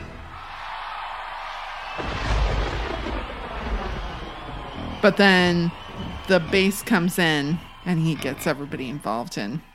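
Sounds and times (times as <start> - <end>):
deep rolling thunder rumbling: 2.0 - 9.0
speech: 5.0 - 9.7.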